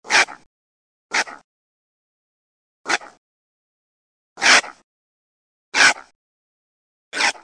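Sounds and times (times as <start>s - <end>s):
Procyon lotor raccoon: 0.0s - 0.5s, 1.1s - 1.4s, 2.9s - 3.2s, 4.4s - 4.8s, 5.7s - 6.2s, 7.1s - 7.4s.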